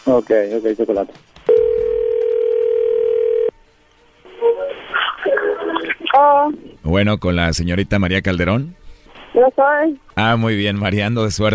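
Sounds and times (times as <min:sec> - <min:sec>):
speech: 0:00.0 - 0:01.3, 0:05.8 - 0:08.8, 0:09.4 - 0:11.5
telephone ringback tone of an outgoing call: 0:01.5 - 0:03.5.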